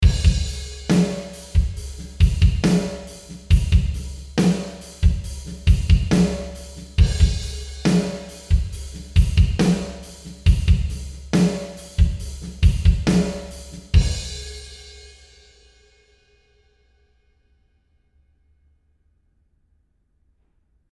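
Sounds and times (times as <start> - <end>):
drums in a warehouse: 0.0 - 16.0.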